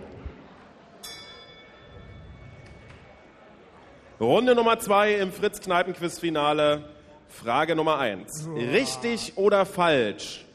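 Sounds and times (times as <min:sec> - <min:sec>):
bell struck to start a pub quiz round: 0:01.0 - 0:02.8
speech: 0:04.2 - 0:10.5.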